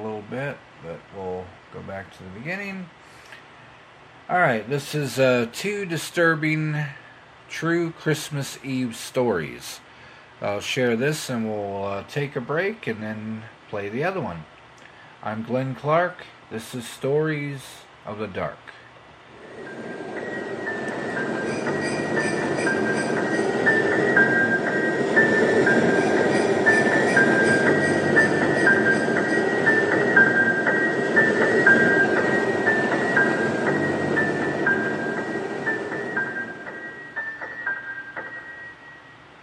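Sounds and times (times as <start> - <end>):
speech: 0.2 - 3.2, 4.3 - 14.5, 15.2 - 18.8
train rolling along the rails: 19.2 - 38.7
high whining metallic tone: 19.3 - 39.4.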